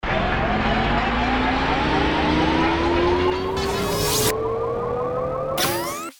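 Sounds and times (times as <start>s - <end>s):
motor revving up: 0.2s - 4.5s, 5.6s - 6.1s.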